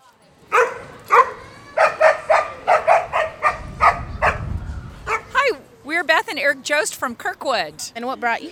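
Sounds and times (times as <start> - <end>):
dog barking: 0.5 - 4.5, 5.1 - 5.4
low rumbling noise: 2.2 - 5.9
speech: 6.3 - 8.5.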